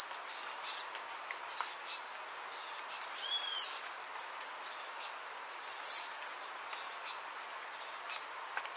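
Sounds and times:
Half-collared sparrow Arremon semitorquatus whistles and ticks: 0.0s - 2.4s, 3.0s - 8.3s.

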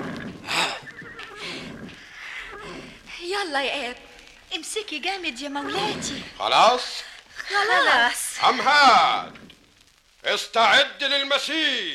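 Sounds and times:
horse neighing: 0.0s - 3.1s, 5.6s - 6.6s
speech: 3.3s - 9.4s, 10.2s - 11.9s.

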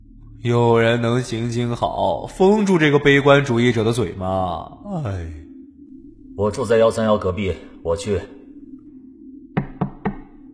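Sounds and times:
faint low steady hum: 0.0s - 10.5s
speech: 0.4s - 5.4s, 6.4s - 8.4s
knocking on a door: 9.6s - 10.3s.

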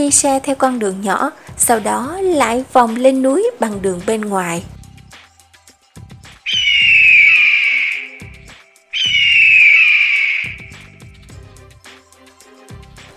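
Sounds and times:
speech: 0.0s - 4.8s
shrill screeching cries of a giant mythical bird: 6.5s - 8.4s, 9.0s - 10.8s.

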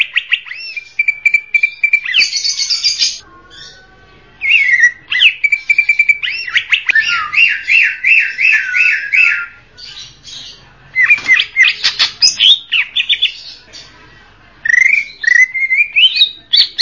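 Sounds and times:
Greater green leafbird song with whistled notes, buzzy trills and harsh chattering: 0.0s - 14.0s, 14.6s - 16.8s.

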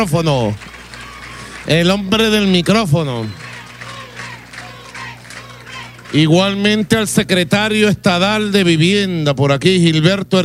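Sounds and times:
speech: 0.0s - 0.7s, 1.6s - 3.4s, 6.1s - 10.4s
audience applauding at a public political gathering: 0.0s - 6.9s
crowd noise at a public political gathering: 0.0s - 8.6s
low constant hum: 0.0s - 10.4s.

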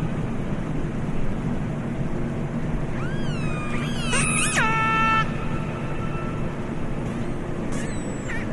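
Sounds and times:
constant low rumbling noise: 0.0s - 8.5s
orca calls with rising wavering harmonic squeals: 3.0s - 7.0s, 7.7s - 8.5s.

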